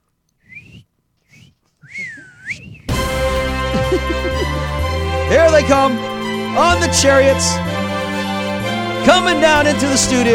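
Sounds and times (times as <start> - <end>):
person whistling clear phrases with a wavering tone: 0.4 - 4.6
laughter: 1.9 - 6.2
loud dense burst of music-like sound: 2.9 - 10.3
speech: 5.3 - 7.6, 9.0 - 10.3.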